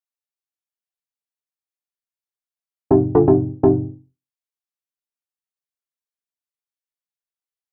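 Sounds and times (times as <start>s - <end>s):
piano loop in F minor at 124 BPM: 2.9s - 4.0s.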